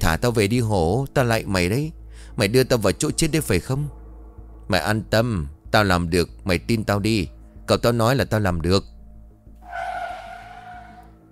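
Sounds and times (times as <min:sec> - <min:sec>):
speech: 0:00.1 - 0:04.0, 0:04.7 - 0:08.9
car braking hard with tires skidding: 0:09.6 - 0:11.2.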